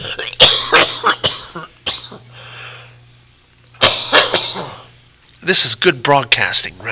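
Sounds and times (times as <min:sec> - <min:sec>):
man coughing: 0:00.0 - 0:02.3, 0:03.8 - 0:05.0
faint steady hum: 0:00.0 - 0:06.9
quiet breath: 0:02.3 - 0:03.0
speech: 0:05.5 - 0:06.9.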